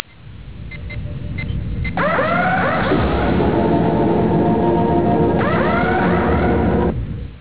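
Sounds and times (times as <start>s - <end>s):
space shuttle: 0.0s - 7.3s.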